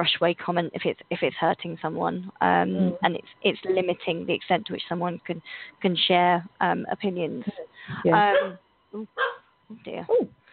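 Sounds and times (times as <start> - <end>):
speech: 0.0 - 10.4
small puppy yipping barks: 8.3 - 8.6, 9.2 - 9.4.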